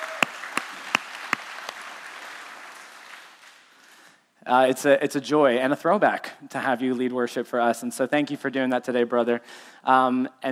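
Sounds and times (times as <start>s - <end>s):
sharp hand claps: 0.0s - 3.7s
church congregation applauding: 0.0s - 4.0s
speech: 4.5s - 10.5s.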